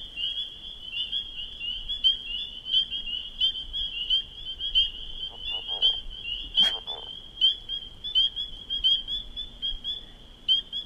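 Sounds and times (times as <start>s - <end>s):
dense chorus of spring peepers: 0.0s - 10.8s
leopard frog low croaking rattle, somewhat submerged: 4.6s - 9.0s.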